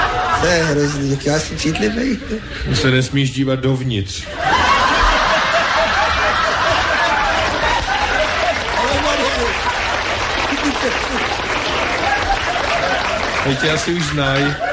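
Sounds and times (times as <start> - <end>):
crowd laughter and chuckles: 0.0 - 3.0, 4.3 - 14.7
speech: 0.4 - 4.6, 13.4 - 14.7
audience applause: 4.4 - 14.7.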